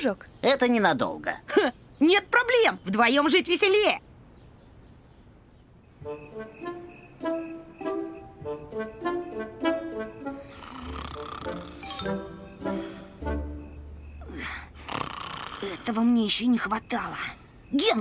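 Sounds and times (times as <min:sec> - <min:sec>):
speech: 0:00.0 - 0:04.1, 0:06.0 - 0:12.8, 0:15.6 - 0:17.9
person snoring while asleep: 0:10.4 - 0:12.0, 0:14.2 - 0:15.8
bright chiming melody of bell-like notes: 0:11.8 - 0:12.8.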